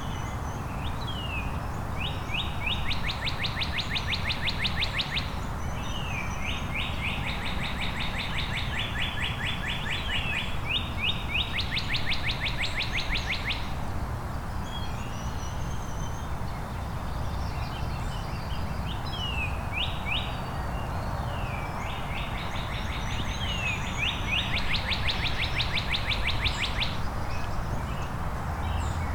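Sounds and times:
two male northern cardinals singing loudly: 0.0s - 13.8s, 14.5s - 29.1s.

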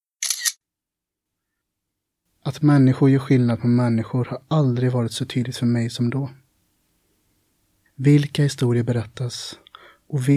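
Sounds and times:
camera shutter click: 0.2s - 0.6s
speech: 2.5s - 6.4s, 8.0s - 10.3s.

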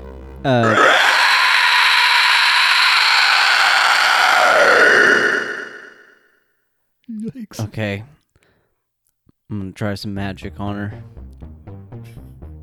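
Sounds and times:
speech: 0.4s - 1.0s, 7.5s - 8.2s, 9.5s - 11.2s
skeletal creature shrieking: 0.5s - 6.3s.

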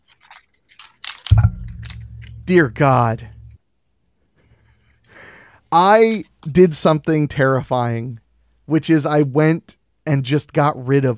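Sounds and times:
keys on a keychain jangling: 0.5s - 2.4s
dull low thump: 1.3s - 3.6s
speech: 2.5s - 3.3s, 5.7s - 11.1s.

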